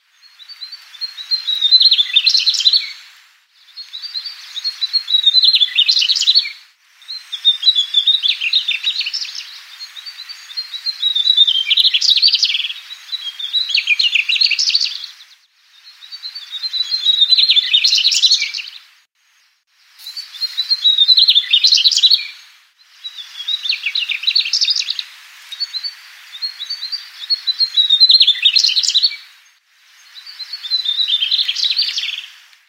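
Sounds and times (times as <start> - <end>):
mugimaki flycatcher song: 0.0 - 32.6.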